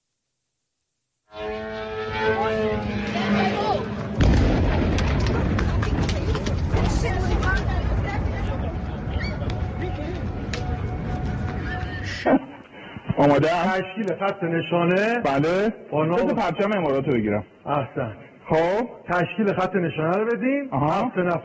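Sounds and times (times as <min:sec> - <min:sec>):
sudden loud blast: 0:01.4 - 0:12.4
missile-strike explosions roaring: 0:02.0 - 0:13.2
sharp cracks of gunfire: 0:04.0 - 0:08.4
speech: 0:13.2 - 0:21.4.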